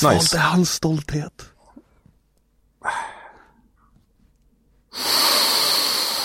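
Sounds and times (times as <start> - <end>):
speech: 0.0 - 1.5
deep breathing in and out: 2.8 - 4.0, 4.9 - 6.2.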